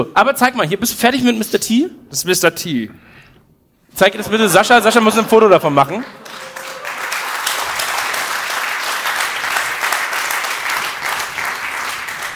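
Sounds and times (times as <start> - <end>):
speech: 0.0 - 3.2, 3.9 - 6.2
audience clapping: 6.0 - 12.3.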